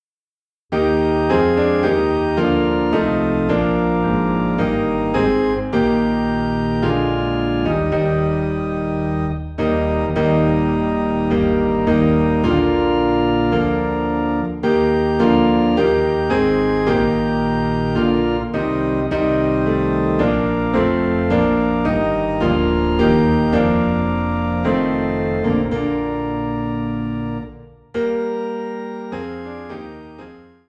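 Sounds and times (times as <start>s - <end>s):
low organ in E flat: 0.7s - 30.6s
low piano in E flat: 0.7s - 30.6s.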